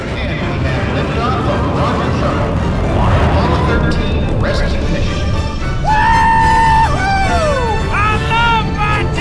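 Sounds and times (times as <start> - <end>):
rocket engines roaring during launch: 0.0 - 9.1
character screaming during rocket launch: 5.8 - 8.6.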